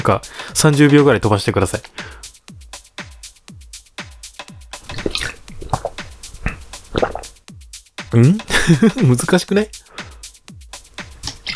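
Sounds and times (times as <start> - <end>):
speech: 0.1 - 2.3, 8.2 - 9.8
person gulping tea from a bottle: 4.8 - 7.4, 11.2 - 11.5
laughter: 8.5 - 9.2.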